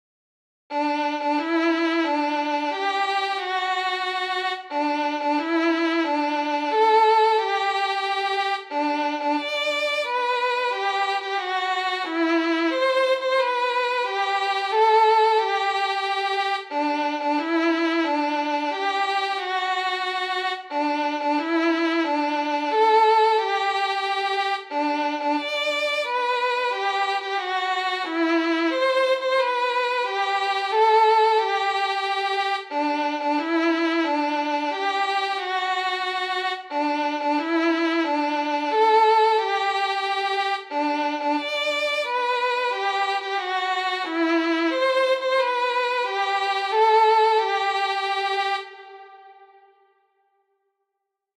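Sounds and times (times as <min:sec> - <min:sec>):
solo violin melody: 0:00.7 - 0:50.0.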